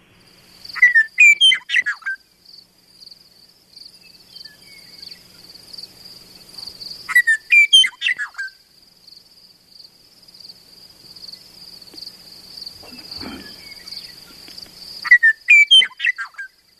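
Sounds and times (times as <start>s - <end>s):
steady high insect buzz: 0.0s - 16.7s
Western Meadowlark singing flute-like phrases: 0.7s - 2.1s, 3.9s - 5.4s, 12.8s - 16.4s
faint rustle: 6.4s - 7.1s, 11.0s - 15.0s.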